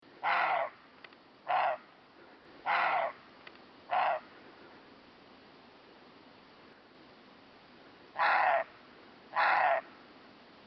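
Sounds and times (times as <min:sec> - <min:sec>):
faint background hiss: 0:00.0 - 0:10.6
Roe deer barking harsh hoarse barks: 0:00.2 - 0:00.8, 0:01.5 - 0:01.8, 0:02.7 - 0:03.2, 0:03.9 - 0:04.3, 0:08.2 - 0:08.7, 0:09.3 - 0:09.9.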